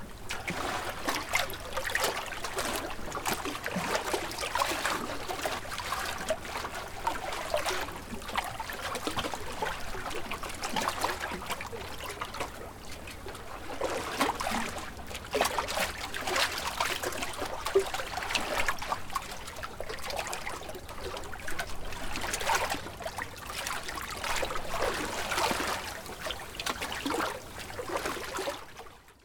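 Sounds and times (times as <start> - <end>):
calm water: 0.0 - 29.2.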